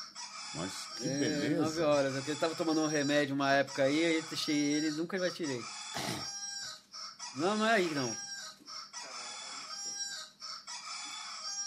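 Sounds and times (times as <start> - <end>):
rooster crowing: 0.0 - 1.9, 6.4 - 11.6
speech: 0.5 - 6.3, 7.4 - 8.2.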